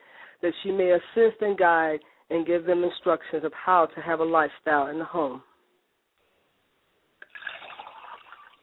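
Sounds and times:
speech: 0:00.4 - 0:05.5
liquid being poured out as libation: 0:07.2 - 0:08.6.

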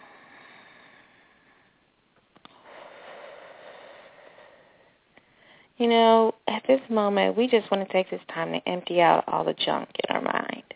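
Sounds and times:
deep breath during a guided prayer: 0:00.0 - 0:01.8, 0:02.5 - 0:05.8
steady hiss: 0:00.0 - 0:10.7
speech: 0:05.8 - 0:10.3.

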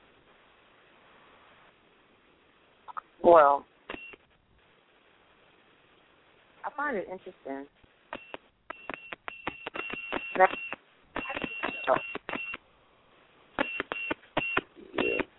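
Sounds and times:
speech: 0:03.2 - 0:03.7, 0:06.8 - 0:07.9, 0:10.4 - 0:10.7, 0:11.9 - 0:12.2
phone keypad tones beeping: 0:08.2 - 0:12.6, 0:13.6 - 0:15.3.

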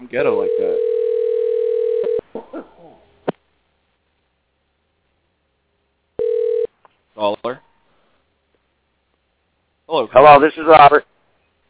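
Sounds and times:
speech: 0:00.1 - 0:01.0, 0:10.2 - 0:11.1
telephone ringback tone through the call line: 0:00.4 - 0:02.2, 0:06.2 - 0:06.7.

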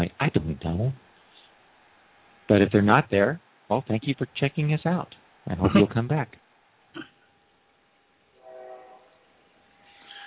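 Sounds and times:
speech: 0:00.0 - 0:01.1, 0:02.5 - 0:06.4
train horn, a faint brief harmonic blare: 0:08.3 - 0:09.4.

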